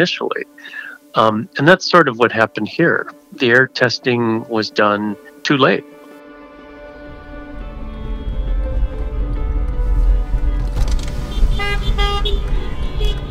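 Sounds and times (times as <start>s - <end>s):
speech: 0.0s - 5.9s
car horns honking in a car caravan in Little Village: 7.8s - 13.2s.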